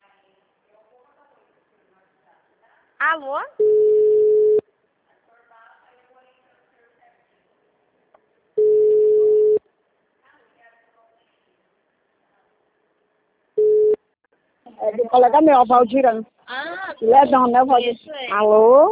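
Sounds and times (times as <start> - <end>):
speech: 3.0 - 3.7, 15.1 - 18.9
telephone busy tone after a dropped call: 3.6 - 4.6, 8.6 - 9.6, 13.6 - 14.0.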